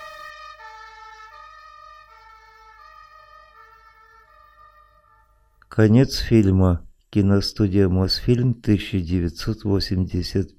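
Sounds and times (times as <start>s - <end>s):
ambulance siren wailing as the ambulance drives away: 0.0s - 5.3s
speech: 5.7s - 10.5s.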